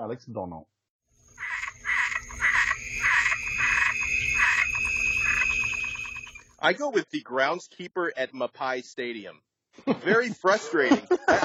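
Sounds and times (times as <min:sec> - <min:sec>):
speech: 0:00.0 - 0:00.8, 0:06.6 - 0:11.4
faint high insect-like trill: 0:01.1 - 0:06.6
frog croaking: 0:01.2 - 0:06.5
laughter: 0:09.8 - 0:11.4.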